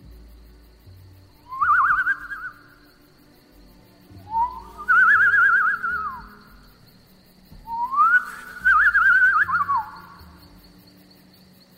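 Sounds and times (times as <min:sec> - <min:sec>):
hunter's lip whistle imitating a bird call to attract a deer: 0:01.4 - 0:02.8, 0:04.3 - 0:06.5, 0:07.7 - 0:10.2.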